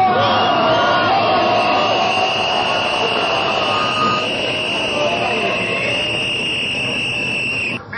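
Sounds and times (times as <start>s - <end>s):
protest crowd chanting: 0.0s - 6.0s
protest crowd shouts: 0.0s - 6.2s
large protest crowd roaring: 0.0s - 7.8s
whistles: 1.3s - 7.8s.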